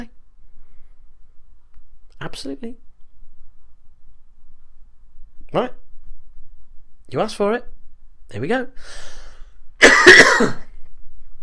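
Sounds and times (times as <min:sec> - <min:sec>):
speech: 0:02.2 - 0:02.8, 0:05.5 - 0:05.8, 0:07.1 - 0:07.7, 0:08.3 - 0:09.2, 0:09.8 - 0:10.6
harsh raspy cough from a person with a bad cold: 0:09.8 - 0:10.7.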